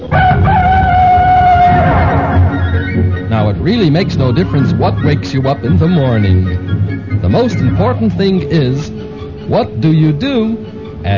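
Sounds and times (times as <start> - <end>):
rooster crowing: 0.0 - 2.9
speech: 3.6 - 11.1.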